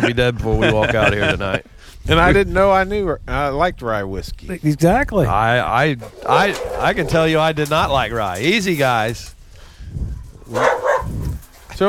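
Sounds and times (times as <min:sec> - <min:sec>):
laughter: 0:00.0 - 0:01.7
speech: 0:00.0 - 0:11.2
dogs barking through a fence at neighbor's dogs: 0:06.0 - 0:07.3, 0:10.2 - 0:11.6.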